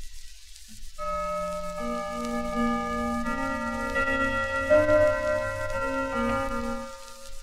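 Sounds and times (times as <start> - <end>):
clock gong half-hour strike: 1.0 - 7.4.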